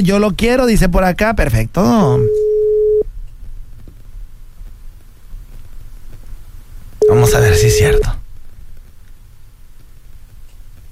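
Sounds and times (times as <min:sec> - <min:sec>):
speech: 0:00.0 - 0:02.4, 0:07.2 - 0:08.2
low hiss: 0:00.0 - 0:10.9
telephone busy tone after a dropped call: 0:02.2 - 0:03.0, 0:07.0 - 0:08.1.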